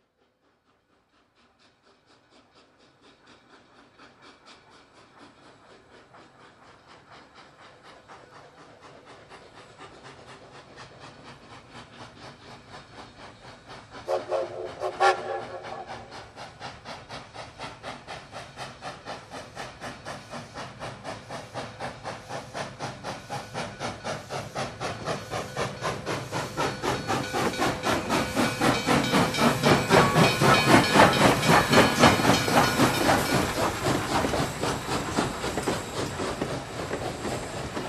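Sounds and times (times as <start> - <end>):
steam locomotive approaching: 0.0 - 37.8
steam locomotive whistle: 14.0 - 16.2.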